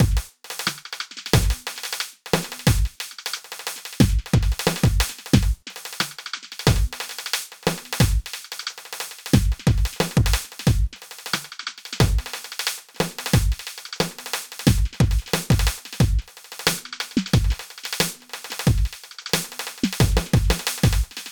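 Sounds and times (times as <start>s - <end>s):
rock drums FX beat: 0.0s - 0.3s, 1.4s - 1.7s, 2.4s - 2.9s, 4.0s - 5.6s, 6.7s - 7.1s, 7.7s - 8.3s, 9.3s - 11.4s, 12.0s - 12.4s, 13.0s - 21.2s.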